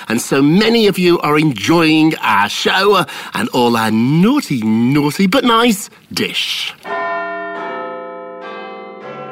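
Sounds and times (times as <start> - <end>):
speech: 0.1 - 7.0
resonant clock tower bell chimes: 6.8 - 9.3.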